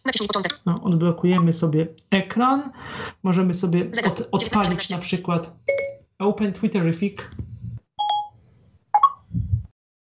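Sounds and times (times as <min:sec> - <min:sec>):
speech: 0:00.0 - 0:07.4
bright electronic chirps from a phone app like squirrel chatter: 0:05.7 - 0:06.0, 0:08.0 - 0:08.4, 0:09.0 - 0:09.3.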